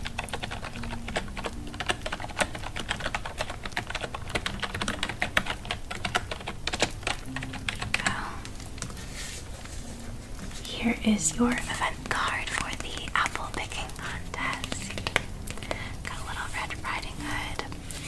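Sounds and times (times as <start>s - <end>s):
typing on a computer keyboard during a hotel check-in: 0.0s - 8.9s, 11.5s - 17.8s
speech: 11.1s - 11.8s.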